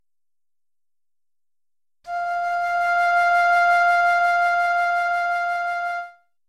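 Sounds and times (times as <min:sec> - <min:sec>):
high B6 oboe note: 0:02.1 - 0:06.2.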